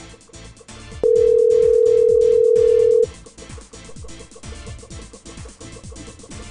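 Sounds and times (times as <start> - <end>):
telephone tone while a number is dialed: 1.0 - 3.1.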